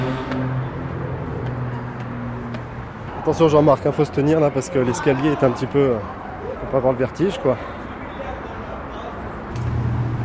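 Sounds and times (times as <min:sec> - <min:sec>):
heavy vehicle passing: 0:00.0 - 0:03.6, 0:09.5 - 0:10.2
expressway traffic roaring below a monument: 0:00.0 - 0:10.2
speech: 0:03.2 - 0:07.8.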